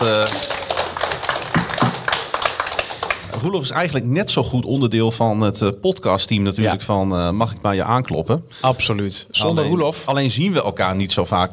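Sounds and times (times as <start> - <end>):
applause for a man being called in to join: 0.0 - 3.8
speech: 3.4 - 11.5.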